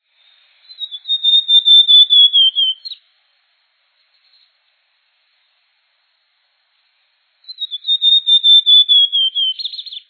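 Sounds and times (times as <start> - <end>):
azulao-da-amazonia bird: 0.0 - 3.1, 3.9 - 4.7, 7.4 - 10.0.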